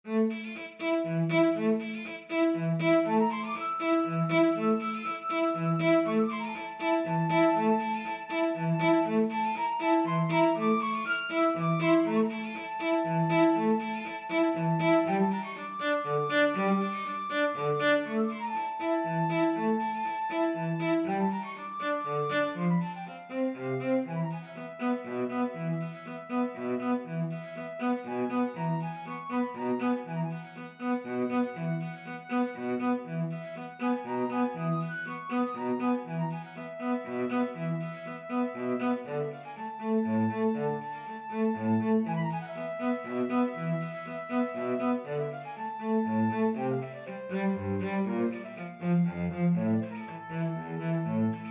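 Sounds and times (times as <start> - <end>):
cello: 0.0 - 51.4
flute: 0.8 - 51.4.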